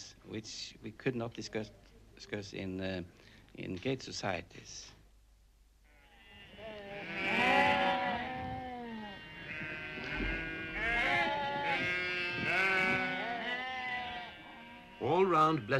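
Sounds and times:
speech: 0:00.2 - 0:05.0, 0:15.0 - 0:15.7
sheep bleating during sheep shearing: 0:05.8 - 0:15.7.

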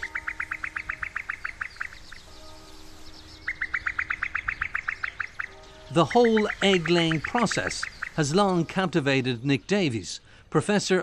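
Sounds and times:
female common cuckoo bubbling call on a fen: 0:00.0 - 0:09.0
speech: 0:05.9 - 0:11.0.

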